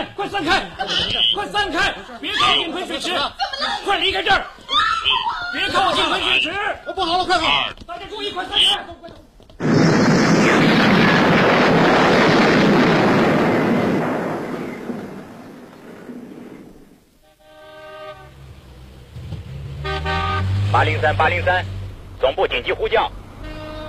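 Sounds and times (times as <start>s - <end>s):
speech: 0.3s - 9.7s, 20.8s - 23.2s
staged explosion at a hotel, drama sound effect: 9.6s - 17.0s
brief tonal horn-like honks: 17.2s - 18.6s, 19.7s - 21.2s, 23.4s - 23.8s.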